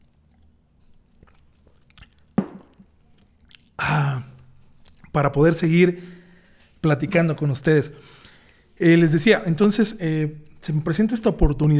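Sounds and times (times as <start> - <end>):
person sipping a drink: 0.0 - 5.1
low room hum: 0.0 - 11.7
speech: 5.2 - 6.2, 6.8 - 8.2, 8.8 - 11.7.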